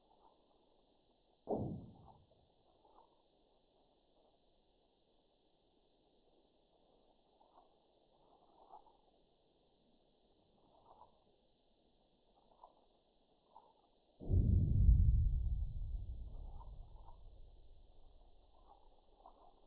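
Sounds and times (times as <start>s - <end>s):
sonification of magnitude 4.9 earthquake at 10.5 km depth in Piedimonte Matese: 1.5s - 2.2s, 14.2s - 19.6s.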